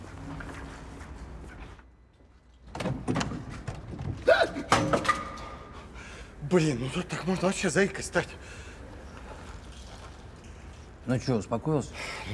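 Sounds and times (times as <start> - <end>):
noise in a parking lot: 0.0 - 12.3
ambulance door latch and metal clatter: 2.6 - 5.6
ambulance door opening in a parking lot: 2.7 - 5.0
speech: 6.5 - 8.7, 11.1 - 12.3.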